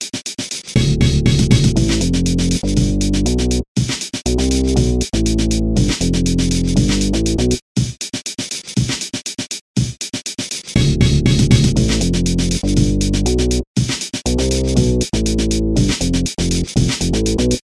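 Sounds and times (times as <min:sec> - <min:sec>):
bass playing: 0:00.8 - 0:03.6, 0:04.3 - 0:07.6, 0:10.8 - 0:13.7, 0:14.3 - 0:17.6.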